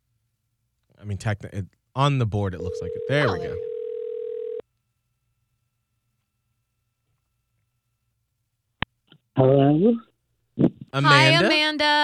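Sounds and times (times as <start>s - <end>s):
speech: 1.0s - 3.7s, 9.4s - 10.1s, 10.9s - 12.0s
steady electronic telephone ring tone on a call line: 2.7s - 4.6s.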